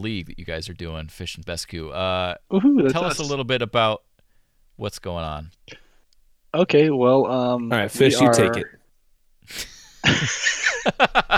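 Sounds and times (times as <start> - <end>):
speech: 0.0 - 4.1, 4.8 - 5.8, 6.5 - 8.8, 9.5 - 11.3
short breath: 4.2 - 4.6
laughter: 9.5 - 11.3.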